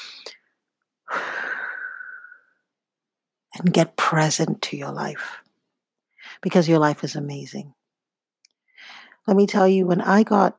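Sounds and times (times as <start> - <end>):
deep breath in and out: 1.1 - 2.6, 8.7 - 9.2
speech: 3.6 - 5.4, 6.4 - 7.8, 9.3 - 10.5.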